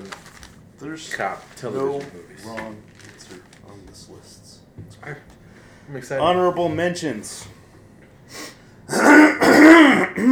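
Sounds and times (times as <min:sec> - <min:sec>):
speech: 0:00.8 - 0:07.6
loud harsh throat clearing: 0:08.9 - 0:10.3.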